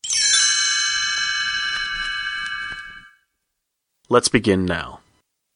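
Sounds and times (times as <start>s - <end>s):
chimes ringing: 0.0s - 3.2s
speech: 4.1s - 5.0s.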